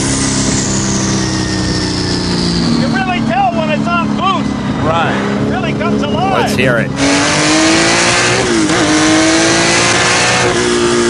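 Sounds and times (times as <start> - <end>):
car engine roaring as it accelerates: 0.0 - 11.0
speech: 6.6 - 7.4.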